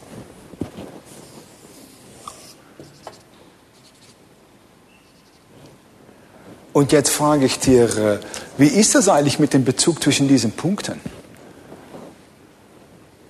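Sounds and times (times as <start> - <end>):
scratching of a circle being drawn by hand during a geometry lesson: 0.7 - 4.3, 5.0 - 5.8
speech: 6.8 - 11.1.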